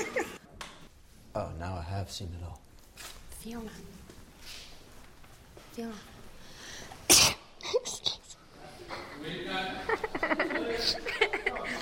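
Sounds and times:
laughter: 0.0s - 0.4s, 9.0s - 11.8s
speech: 1.4s - 4.6s, 5.8s - 6.1s, 9.2s - 11.8s
person sneezing: 7.1s - 8.0s.

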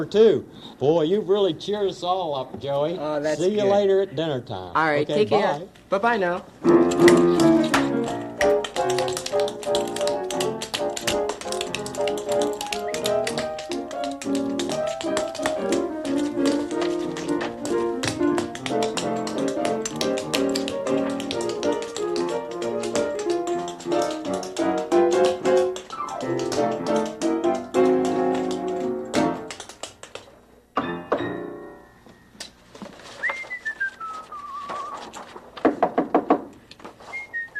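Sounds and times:
speech: 0.0s - 7.7s
music with rapid tapping: 6.6s - 30.3s
loud knocks on a factory door: 35.6s - 36.5s.

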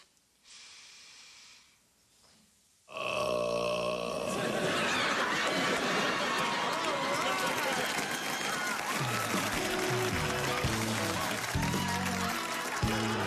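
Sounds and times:
person inhaling: 0.4s - 1.9s
person burping deliberately: 2.9s - 4.6s
laughter: 4.2s - 13.2s.

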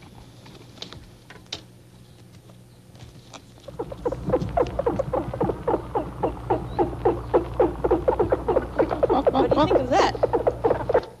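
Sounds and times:
dolphins chattering while playing: 3.7s - 11.1s.

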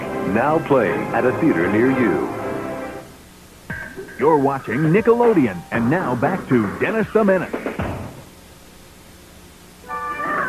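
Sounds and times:
hiss: 0.0s - 10.4s
speech: 0.3s - 2.4s, 4.2s - 7.6s
cat meowing: 9.9s - 10.4s.

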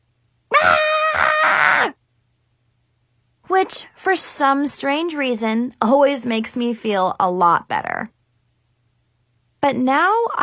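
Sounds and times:
girl screaming: 0.5s - 2.0s
speech: 3.7s - 8.2s, 9.6s - 10.4s.

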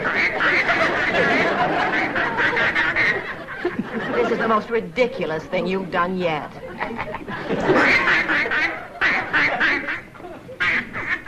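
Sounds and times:
duck quacking: 0.0s - 3.6s, 7.6s - 11.2s
laughter: 0.0s - 11.2s
speech: 4.5s - 8.1s.

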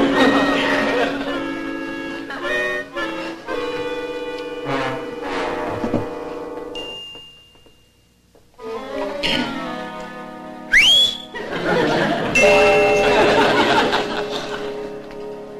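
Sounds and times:
laughter: 0.0s - 2.9s, 11.3s - 15.0s
steady tonal hum: 0.0s - 15.5s
person whistling a rising note: 10.7s - 11.4s.

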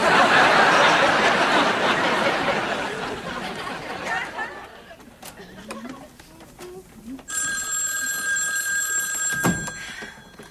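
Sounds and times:
crowd laughter: 0.0s - 6.1s
telephone bell ringing: 7.3s - 10.4s.

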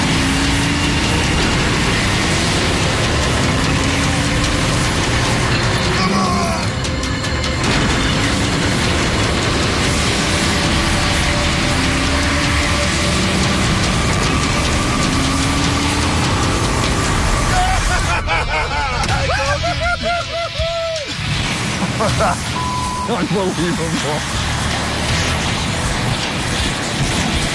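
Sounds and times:
truck engine straining while yanked out of a ditch: 0.0s - 27.5s
laughter: 17.4s - 22.6s.

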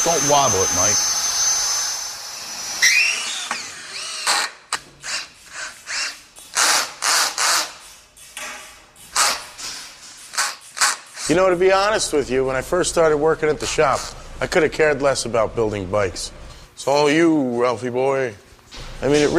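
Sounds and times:
speech: 0.0s - 1.2s, 11.3s - 18.4s, 19.0s - 19.3s
power drill drilling holes in metal: 0.0s - 7.7s.

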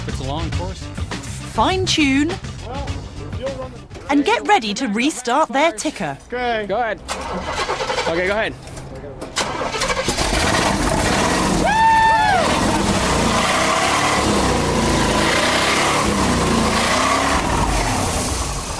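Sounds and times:
speech: 0.3s - 1.0s, 1.6s - 8.7s
loud engine cranking, starting and revving: 7.1s - 8.4s, 9.4s - 11.7s, 12.4s - 18.7s
rising-and-falling whoop: 11.4s - 12.9s.

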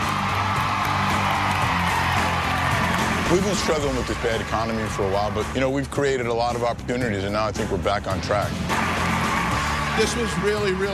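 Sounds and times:
crowd cheering and whooping at a chopper motorcycle unveiling: 0.0s - 5.5s, 8.6s - 10.9s
speech: 3.3s - 8.9s, 10.0s - 10.9s.

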